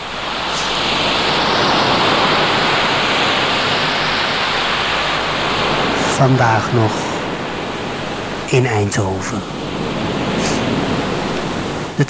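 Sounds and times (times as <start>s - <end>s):
ocean waves: 0.0s - 12.0s
speech: 6.2s - 7.1s, 8.5s - 9.7s.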